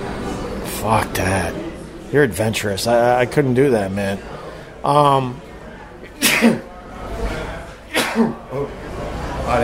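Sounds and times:
speech: 0.8s - 5.4s, 6.4s - 6.7s, 8.2s - 8.8s, 9.5s - 9.6s
person sneezing: 6.2s - 6.7s, 7.9s - 8.4s.

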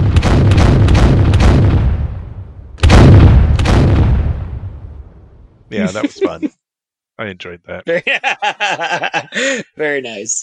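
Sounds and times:
cannon firing: 0.0s - 5.4s
laughter: 5.7s - 6.5s, 7.6s - 9.7s
speech: 5.8s - 6.6s, 7.2s - 10.4s.

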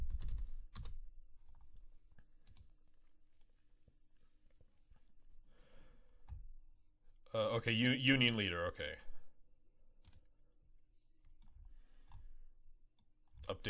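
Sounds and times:
typing on a computer keyboard: 0.0s - 1.1s, 2.4s - 2.7s
speech: 7.3s - 9.1s.

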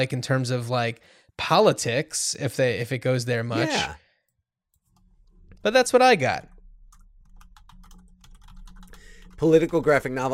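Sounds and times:
speech: 0.0s - 4.0s, 5.6s - 6.5s, 9.4s - 10.3s
fingers typing on a computer keyboard: 6.9s - 10.2s.

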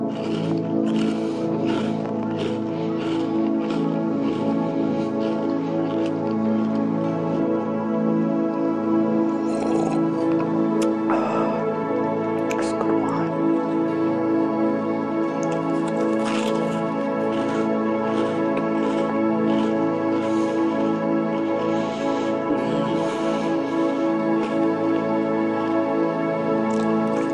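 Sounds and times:
person eating crunchy Burger Rings snack rings: 0.0s - 6.9s, 9.4s - 11.6s, 15.4s - 20.6s, 22.2s - 24.8s, 26.6s - 27.3s
steady hum with several layered tones: 0.0s - 27.3s.

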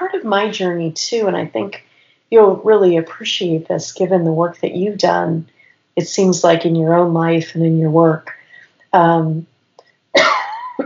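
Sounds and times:
speech: 0.1s - 9.5s
person coughing or clearing throat: 10.2s - 10.8s.

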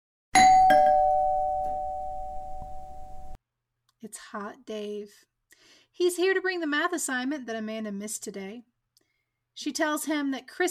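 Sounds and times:
doorbell chiming ding-dong: 0.4s - 3.4s
speech: 4.0s - 8.7s, 9.6s - 10.7s.

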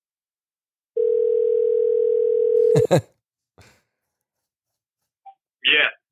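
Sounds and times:
telephone dial tone: 1.0s - 2.8s
speech: 2.9s - 3.7s, 5.6s - 6.1s.

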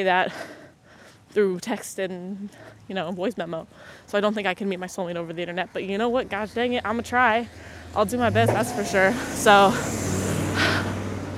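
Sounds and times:
speech: 0.0s - 0.6s, 1.3s - 10.1s
delivery truck engine rumble driving past: 2.5s - 11.3s.

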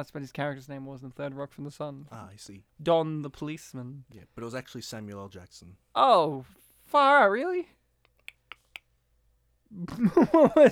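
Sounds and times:
speech: 0.0s - 7.8s, 9.7s - 10.7s
faint hiss: 0.0s - 10.7s
mouth clicks made by a speaker to stand for a nod: 8.0s - 8.9s.

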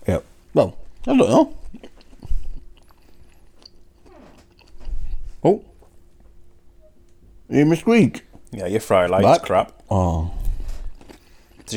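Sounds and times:
quiet room hum: 0.0s - 11.7s
speech: 0.1s - 1.9s, 5.4s - 5.7s, 7.5s - 10.4s
person chewing food with crunchy bites: 0.9s - 5.9s, 9.7s - 11.7s.

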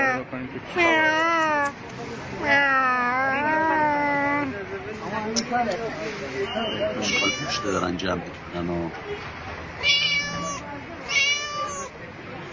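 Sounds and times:
cat meowing: 0.0s - 1.8s, 2.4s - 4.5s, 7.0s - 7.8s, 9.8s - 12.0s
noise: 0.0s - 12.5s
speech: 0.4s - 1.3s, 5.6s - 9.4s.

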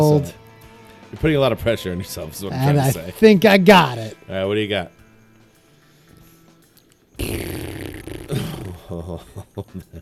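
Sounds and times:
speech: 0.0s - 0.4s, 1.1s - 5.0s, 7.2s - 7.8s, 8.9s - 10.0s
loud wet fart: 7.2s - 8.8s.

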